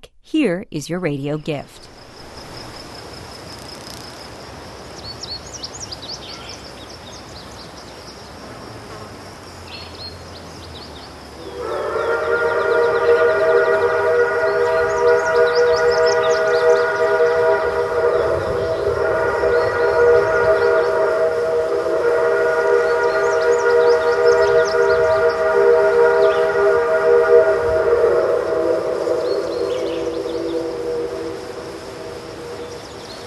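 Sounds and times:
speech: 0:00.3 - 0:01.9
steam train whistle blowing a sustained chord: 0:11.4 - 0:33.2.

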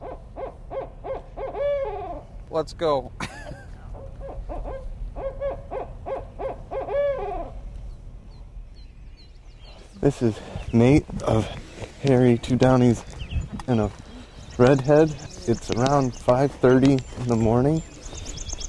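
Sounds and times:
barred owl hooting: 0:00.0 - 0:02.3, 0:03.9 - 0:07.6, 0:13.0 - 0:18.6
speech: 0:02.5 - 0:03.5, 0:10.0 - 0:13.1, 0:13.7 - 0:14.0, 0:14.6 - 0:17.9.

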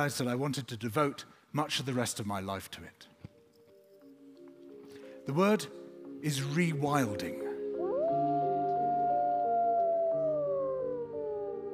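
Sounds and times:
speech: 0:00.0 - 0:03.1, 0:05.3 - 0:07.4
chorus of gray wolves howling: 0:07.8 - 0:11.7.

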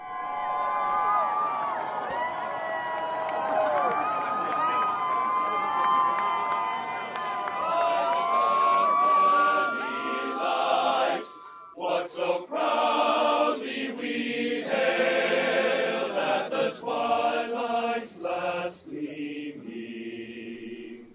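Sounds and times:
crowd of hundreds cheering and whooping at the Supreme Court: 0:00.0 - 0:11.8
many overlapping excited voices: 0:06.8 - 0:20.3.

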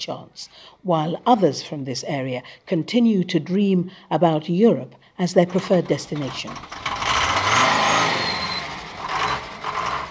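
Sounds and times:
speech: 0:00.0 - 0:06.9
bus engines revving and idling at the main bus station in Tambacounda: 0:06.1 - 0:10.0.

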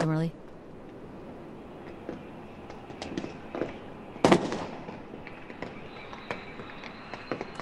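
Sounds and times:
fireworks popping and crackling over Tahrir Square: 0:00.8 - 0:07.6
crowd cheering in Tahrir Square: 0:01.0 - 0:07.6
loud firework bang: 0:01.8 - 0:06.7.

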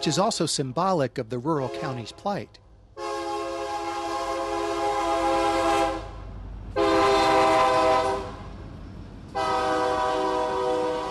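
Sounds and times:
freight train horn blasts: 0:00.0 - 0:00.4, 0:01.6 - 0:02.2, 0:03.0 - 0:08.5, 0:09.3 - 0:11.0
speech: 0:00.0 - 0:02.6
freight train rolling past in Hancock County Mississippi: 0:00.0 - 0:11.0.

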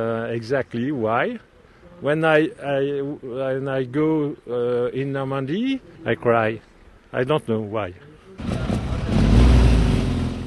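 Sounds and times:
speech: 0:00.0 - 0:08.5
replica World War II Army Jeep and motorcycle engines rumbling while driving away: 0:08.4 - 0:10.4.

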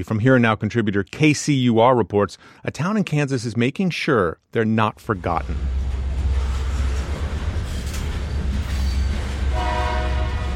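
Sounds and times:
speech: 0:00.0 - 0:05.8
freight train rumbling past: 0:05.0 - 0:10.5
rolling railcars of a freight train: 0:05.0 - 0:10.5
freight train horn blaring: 0:09.2 - 0:10.5.

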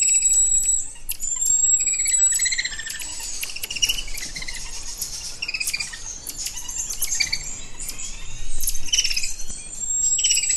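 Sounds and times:
chorus of monkeys calling with high-pitched chirps, squeaks and whistles: 0:02.0 - 0:09.3.

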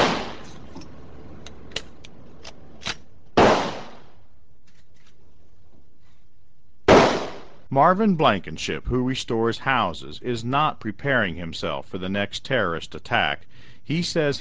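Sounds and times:
gunshots from a shoulder-fired gun at a shooting range: 0:00.0 - 0:00.4, 0:03.4 - 0:04.1, 0:06.9 - 0:07.6
speech: 0:07.7 - 0:14.3.

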